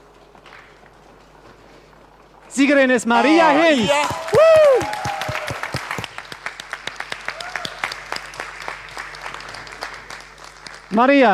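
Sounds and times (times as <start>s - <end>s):
speech: 2.6s - 5.0s, 11.0s - 11.3s
poetry slam audience drumroll with hands or feet: 3.8s - 6.2s.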